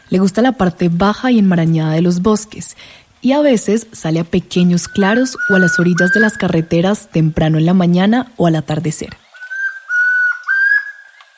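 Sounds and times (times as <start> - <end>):
speech: 0.1 - 9.2
Chestnut-crowned antpitta song: 4.7 - 6.7, 9.2 - 11.3.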